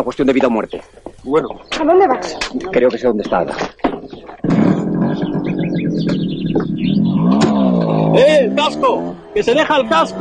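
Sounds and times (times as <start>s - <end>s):
speech: 0.0s - 3.8s, 6.0s - 10.1s
faint bird chirps: 0.0s - 8.2s
motorcycle engine revving and driving off: 4.4s - 10.1s.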